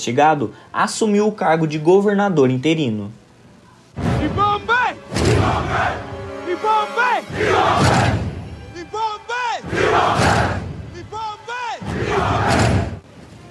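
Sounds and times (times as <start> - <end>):
speech: 0.0 - 3.2, 4.0 - 4.6
crowd chanting a battle cry in unison: 5.0 - 8.4, 9.5 - 13.0.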